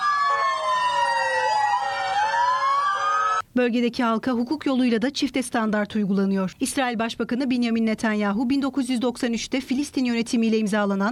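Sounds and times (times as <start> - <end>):
ambulance siren wailing in Nablus West Bank: 0.0 - 3.4
speech: 3.6 - 11.1.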